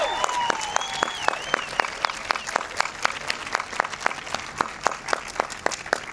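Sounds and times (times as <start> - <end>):
whistles: 0.0 - 2.7
cheers: 0.0 - 3.0
audience applauding storytellers at a storytelling event: 0.0 - 6.1.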